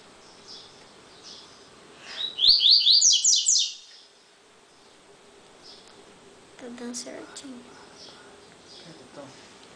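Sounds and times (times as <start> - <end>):
Double-collared seedeater singing: 0.2 - 5.0, 5.6 - 5.9, 7.7 - 9.1
speech: 6.8 - 8.1, 8.9 - 9.5.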